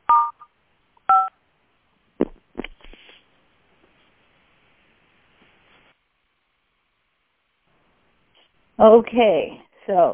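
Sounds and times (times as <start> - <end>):
short bright telephone keypad beeps: 0.1 - 0.5, 1.1 - 1.3
speech: 8.8 - 10.1.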